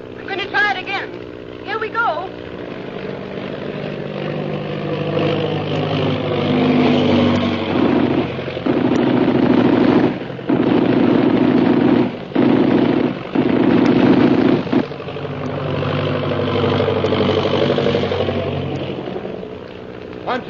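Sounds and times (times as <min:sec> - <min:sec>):
airplane engine droning: 0:00.0 - 0:20.4
speech: 0:01.8 - 0:02.6
short choppy gunfire bursts: 0:06.2 - 0:15.2.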